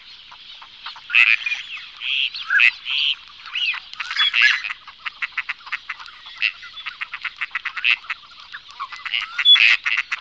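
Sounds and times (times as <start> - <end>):
gadwall giving short nasal notes: 2.1 - 3.0, 4.0 - 8.2, 8.9 - 10.2.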